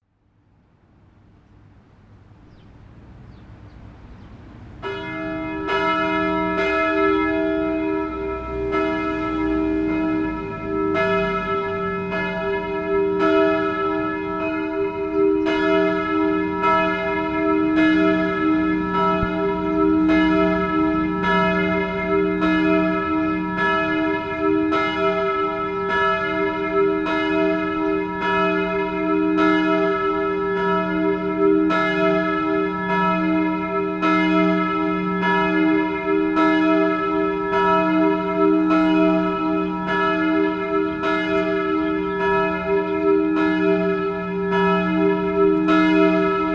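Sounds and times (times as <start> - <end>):
church bells ringing a noon peal in Moudon: 4.6 - 46.5.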